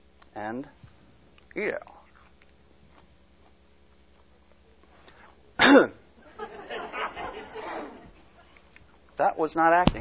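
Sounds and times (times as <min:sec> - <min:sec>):
speech: 0:00.4 - 0:00.9, 0:01.6 - 0:02.0, 0:05.8 - 0:06.0, 0:09.2 - 0:09.9
person coughing after choking on parsley dipped in salt water: 0:05.6 - 0:06.0
laughter: 0:06.2 - 0:08.5.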